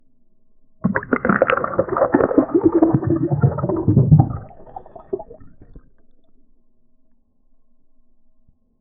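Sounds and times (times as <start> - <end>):
underwater dive sound in deep water: 0.8 - 6.4.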